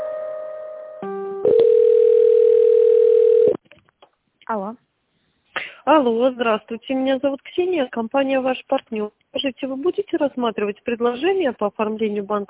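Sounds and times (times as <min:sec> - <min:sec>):
electronic telephone tones while a call is transferred: 0:01.4 - 0:03.6
speech: 0:06.0 - 0:12.4.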